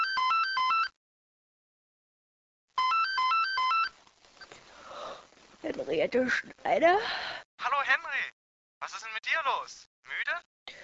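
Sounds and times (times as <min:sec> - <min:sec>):
telephone ringing with a bright electronic warble: 0:00.0 - 0:01.0, 0:02.8 - 0:04.0
speech: 0:05.6 - 0:10.5.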